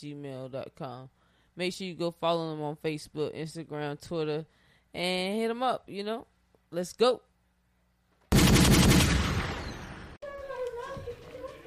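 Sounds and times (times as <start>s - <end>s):
speech: 0.0s - 7.3s
rapid gunshot sound effects: 8.3s - 10.2s.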